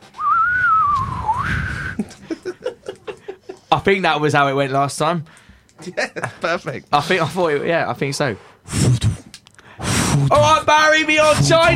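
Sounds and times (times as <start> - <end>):
person whistling a gliding note: 0.2 - 2.1
short rhythmic bursts like stifled chuckles: 1.8 - 3.7
speech: 3.8 - 9.0, 10.2 - 11.7.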